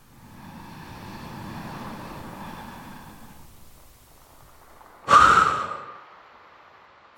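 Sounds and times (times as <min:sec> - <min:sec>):
deep inhale through the mouth during a relaxation exercise: 0:00.0 - 0:04.1, 0:05.1 - 0:06.0
forceful exhale during a relaxation exercise: 0:00.3 - 0:03.6, 0:05.1 - 0:06.0.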